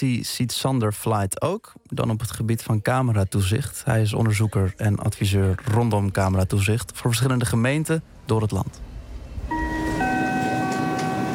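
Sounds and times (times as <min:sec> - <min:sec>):
speech: 0:00.0 - 0:08.9
Sprinter passenger train bound for Amsterdam giving off sustained high tones: 0:09.4 - 0:11.3.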